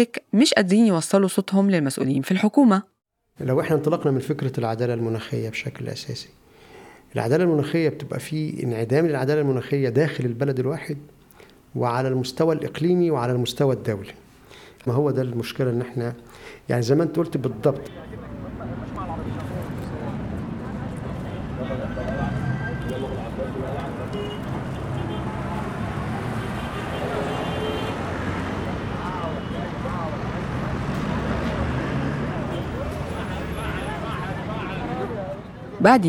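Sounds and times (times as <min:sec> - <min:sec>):
speech: 0:00.0 - 0:06.4, 0:07.1 - 0:14.2, 0:14.8 - 0:18.3, 0:35.8 - 0:36.0
wind on a seaside road: 0:06.4 - 0:36.0
passing traffic rumble on a busy seaside corniche road: 0:17.4 - 0:35.8.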